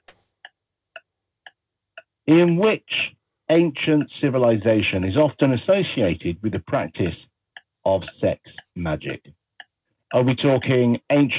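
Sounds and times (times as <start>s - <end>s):
quiz countdown clock ticking: 0.0s - 11.3s
speech: 2.3s - 7.3s, 7.9s - 9.4s, 10.1s - 11.3s.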